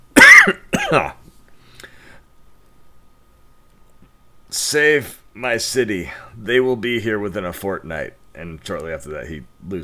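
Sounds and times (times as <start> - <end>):
person coughing theatrically: 0.2 - 1.2
speech: 0.5 - 1.2, 4.6 - 9.8.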